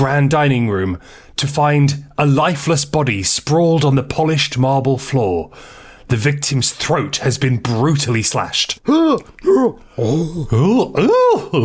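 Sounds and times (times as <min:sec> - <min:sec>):
speech: 0:00.0 - 0:11.6
sharp gasp: 0:05.5 - 0:06.0
several voices crying out in horror: 0:08.9 - 0:11.6.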